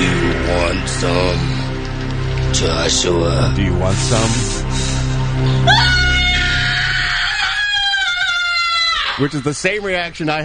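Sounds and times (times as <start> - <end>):
low rumbling background: 0.0 - 9.0
speech: 0.7 - 1.6, 2.5 - 4.8, 5.4 - 6.0, 9.2 - 10.4
piercing scream from a film: 5.4 - 9.8.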